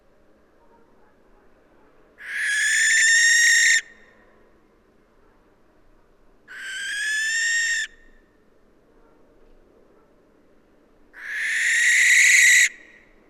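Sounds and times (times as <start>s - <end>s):
Western barn owl Tyto alba screeching: 2.2s - 3.9s, 6.5s - 8.0s, 11.2s - 12.9s.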